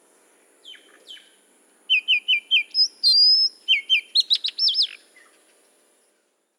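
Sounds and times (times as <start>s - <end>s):
Oriental magpie-robin singing: 1.9s - 5.3s.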